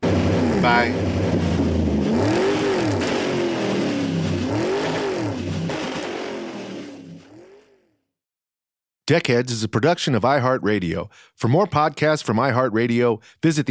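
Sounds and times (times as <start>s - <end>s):
car engine revving as the car pulls off: 0.0s - 7.8s
speech: 0.6s - 1.3s, 9.1s - 13.7s.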